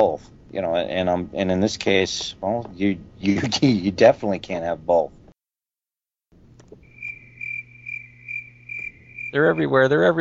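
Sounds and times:
speech: 0:00.0 - 0:05.2, 0:09.3 - 0:10.1
low hum: 0:00.0 - 0:05.4, 0:06.4 - 0:10.1
crickets chirping: 0:06.8 - 0:10.0.

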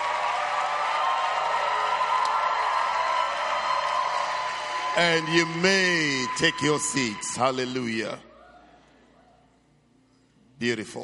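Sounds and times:
church audience clapping after a prayer: 0:00.0 - 0:07.8
speech: 0:05.0 - 0:08.3, 0:10.6 - 0:11.0.

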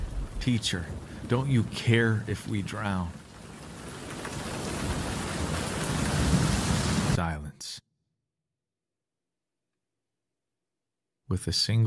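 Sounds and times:
heavy rain: 0:00.0 - 0:07.2
rolling thunder: 0:00.0 - 0:07.2
speech: 0:00.4 - 0:03.2, 0:11.3 - 0:11.8.

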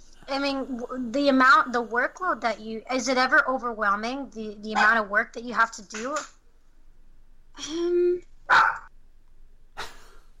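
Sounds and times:
speech: 0:00.3 - 0:06.4, 0:07.6 - 0:08.8
dog barking: 0:04.7 - 0:05.0, 0:08.5 - 0:08.9.

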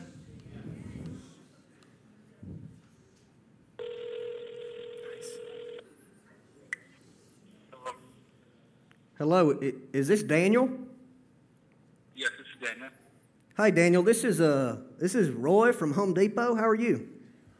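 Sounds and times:
phone ring tone through a phone's speaker: 0:03.8 - 0:05.8
speech: 0:09.2 - 0:10.8, 0:13.6 - 0:17.1.

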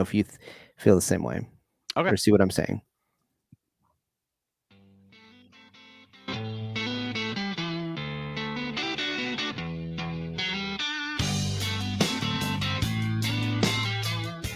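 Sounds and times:
speech: 0:00.0 - 0:02.9
loud distorted electric guitars in a rock song: 0:05.1 - 0:14.5
heavy bass line: 0:06.3 - 0:14.5.

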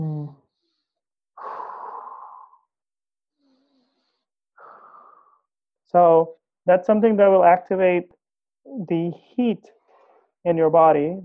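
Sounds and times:
alternate nostril breathing exercise: 0:00.0 - 0:02.7, 0:03.4 - 0:05.5, 0:09.8 - 0:10.3
speech: 0:05.9 - 0:09.8, 0:10.4 - 0:11.2.

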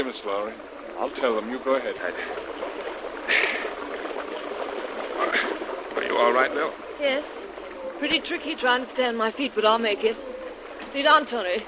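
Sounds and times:
speech: 0:00.0 - 0:02.6, 0:03.2 - 0:03.7, 0:06.2 - 0:07.4, 0:08.0 - 0:10.3, 0:10.9 - 0:11.6
river water rushing: 0:00.0 - 0:11.6
splash of someone wading through river current: 0:02.0 - 0:06.7.

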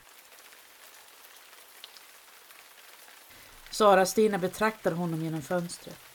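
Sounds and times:
rain falling: 0:00.0 - 0:06.1
speech: 0:03.7 - 0:06.1.

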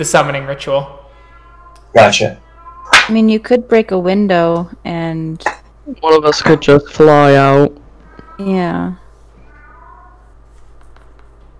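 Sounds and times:
speech: 0:00.0 - 0:01.0, 0:01.9 - 0:02.4, 0:03.1 - 0:07.8, 0:08.4 - 0:09.0
low steady hum: 0:00.0 - 0:09.8
drawn-out cat meow rising then falling in pitch: 0:01.2 - 0:03.1, 0:08.0 - 0:10.4.

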